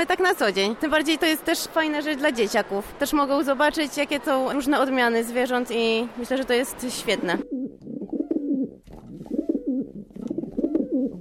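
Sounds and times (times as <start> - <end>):
speech: 0.0 - 7.5
pigeons cooing: 7.4 - 11.2.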